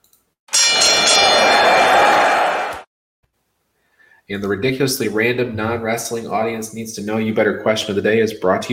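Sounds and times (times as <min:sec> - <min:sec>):
single bright bell struck and ringing: 0:00.5 - 0:02.7
speech: 0:04.3 - 0:08.7.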